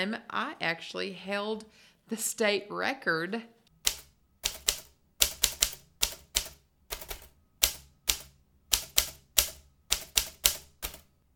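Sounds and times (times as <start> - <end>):
speech: 0.0 - 3.6
mechanical typewriter keystrokes: 3.8 - 11.1.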